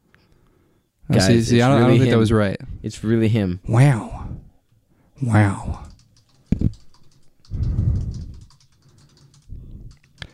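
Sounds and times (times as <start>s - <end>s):
speech: 1.1s - 4.2s, 5.2s - 5.8s
computer keyboard typing: 5.3s - 10.3s.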